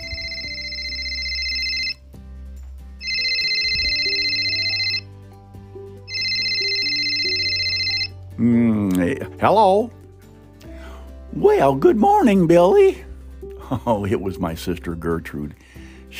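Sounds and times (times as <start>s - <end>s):
telephone ringing with bright electronic trill: 0.0s - 2.0s, 3.0s - 5.1s, 6.1s - 8.2s
soft low hum of music: 0.0s - 16.1s
speech: 8.4s - 10.0s, 11.4s - 13.1s, 13.7s - 16.1s.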